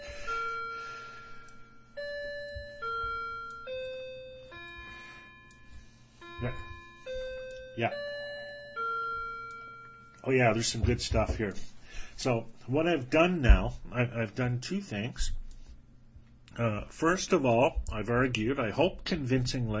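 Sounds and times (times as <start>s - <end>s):
clock chiming a slow stepped melody: 0.0s - 11.4s
faint room noise: 0.0s - 19.7s
speech: 6.4s - 6.6s, 7.8s - 8.1s, 10.2s - 15.4s, 16.6s - 19.7s.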